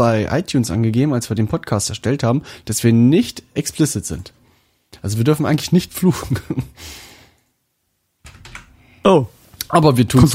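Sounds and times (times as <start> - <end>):
speech: 0.0 - 7.1, 9.0 - 10.3
clicky computer keyboard typing: 8.2 - 8.7.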